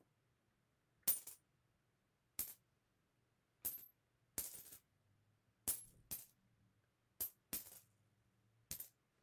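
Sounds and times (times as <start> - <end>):
coin tossing: 1.1 - 1.4, 3.6 - 4.8, 7.2 - 7.9, 8.7 - 8.9.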